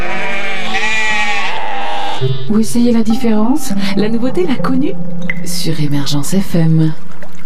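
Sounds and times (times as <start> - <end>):
herd of sheep bleating: 0.0 - 2.4
speech: 2.2 - 7.1.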